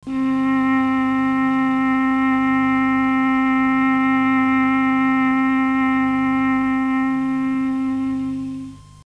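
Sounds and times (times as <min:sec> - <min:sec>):
clarinet: 0:00.0 - 0:09.0.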